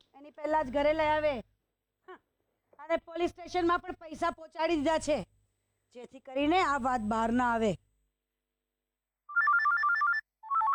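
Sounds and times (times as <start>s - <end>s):
speech: 0.2s - 1.5s, 2.8s - 7.8s
mobile phone ringtone with rapid trilling electronic melody: 9.3s - 10.7s.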